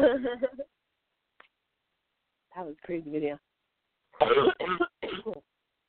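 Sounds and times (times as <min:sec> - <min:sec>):
speech: 0:00.2 - 0:00.6, 0:02.9 - 0:03.5, 0:04.3 - 0:04.9
rough coughs: 0:04.2 - 0:05.4
throat-clearing rasp: 0:04.2 - 0:05.4.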